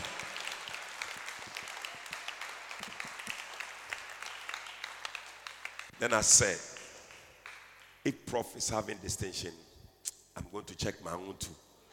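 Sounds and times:
audience applause: 0.0 - 5.9
speech: 6.0 - 6.7, 8.0 - 11.6.

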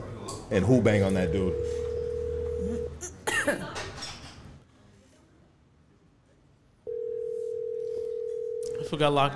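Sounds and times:
speech: 0.5 - 1.8, 3.0 - 3.9, 8.9 - 9.3
ringback tone of an unanswered phone call: 1.3 - 2.9, 6.9 - 8.9
person coughing: 3.0 - 3.8.

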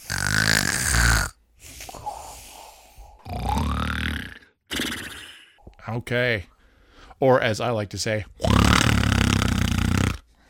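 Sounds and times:
person vocally imitating a cartoon snore: 0.0 - 1.4, 3.2 - 5.6, 8.4 - 10.2
speech: 5.9 - 6.5, 7.2 - 8.5.

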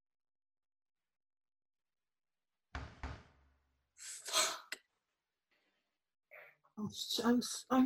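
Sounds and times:
heavy knocks on a door as a food delivery arrives: 2.7 - 3.5
speech: 6.8 - 7.8.

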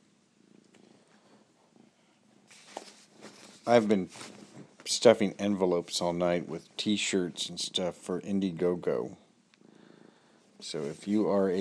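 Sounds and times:
cat purring: 0.4 - 2.5
speech: 3.7 - 9.2, 10.6 - 11.6.

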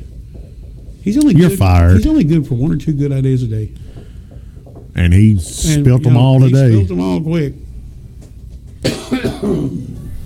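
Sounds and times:
speech: 1.0 - 3.9, 5.0 - 7.6, 8.8 - 9.9
person coughing and hacking: 8.8 - 10.0.

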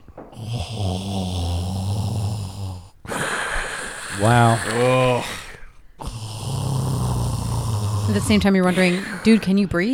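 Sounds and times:
voice imitating a roommate's deep rasping snore: 0.3 - 9.7
speech: 0.4 - 1.5, 4.2 - 5.4, 8.1 - 9.9.

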